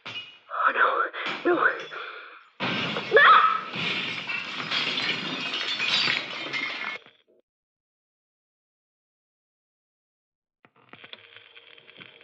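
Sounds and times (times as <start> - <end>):
clinking and crunching glass debris: 0.0 - 0.5, 1.2 - 7.2
glass panel shattering: 0.0 - 0.5, 1.2 - 7.1
speech: 0.7 - 2.0.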